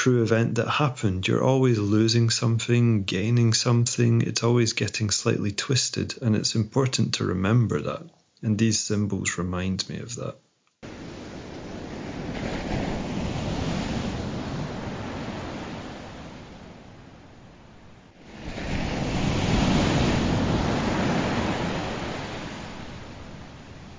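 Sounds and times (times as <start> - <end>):
speech: 0.0 - 10.4
ocean waves at the beach: 10.8 - 23.9.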